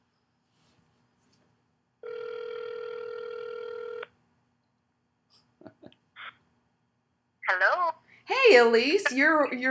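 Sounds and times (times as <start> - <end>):
ringback tone from an outgoing phone call: 2.0 - 4.0
speech: 8.4 - 9.6.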